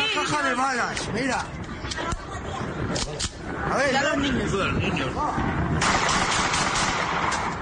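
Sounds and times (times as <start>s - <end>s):
speech: 0.1s - 6.2s
celebratory gunshots fired into the air in rapid bursts: 5.8s - 7.5s.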